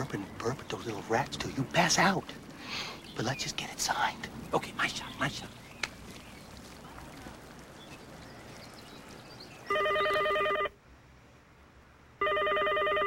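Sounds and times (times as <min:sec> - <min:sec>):
speech: 0:00.0 - 0:05.6
dull noise: 0:00.0 - 0:13.0
telephone ringing on an incoming call: 0:09.7 - 0:10.7, 0:12.2 - 0:13.0.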